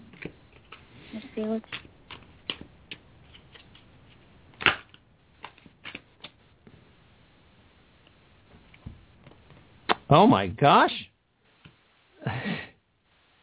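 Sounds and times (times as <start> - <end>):
speech: 1.4 - 1.8, 10.1 - 11.0
deck of cards being shuffled: 1.6 - 6.4.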